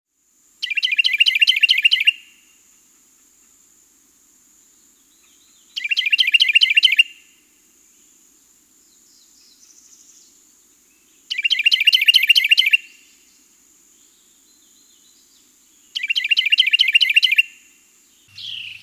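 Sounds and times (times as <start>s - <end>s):
Carolina wren: 0.6s - 2.2s, 4.9s - 7.1s, 8.9s - 13.4s, 14.0s - 17.6s, 18.2s - 18.8s.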